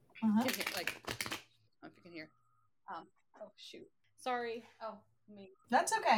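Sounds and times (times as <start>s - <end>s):
speech: 0.2s - 1.2s, 2.1s - 6.1s
deck of crow tarot cards being shuffled: 0.4s - 1.5s.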